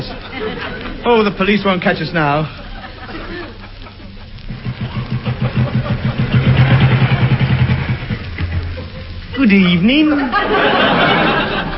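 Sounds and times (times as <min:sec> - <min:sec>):
laughter: 0:00.0 - 0:01.3, 0:02.5 - 0:11.7
speech: 0:00.0 - 0:02.6, 0:09.4 - 0:11.3
motorbike engine puttering: 0:04.5 - 0:09.5.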